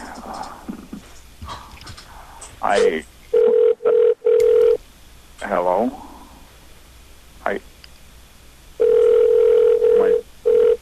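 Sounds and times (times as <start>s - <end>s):
speech: 2.6s - 3.1s
telephone dial tone while a call is dialing: 3.4s - 4.8s, 8.8s - 10.7s.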